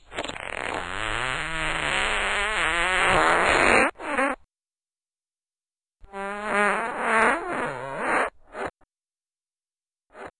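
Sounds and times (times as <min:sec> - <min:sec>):
fart: 0:00.0 - 0:04.4, 0:06.1 - 0:08.8, 0:10.1 - 0:10.3.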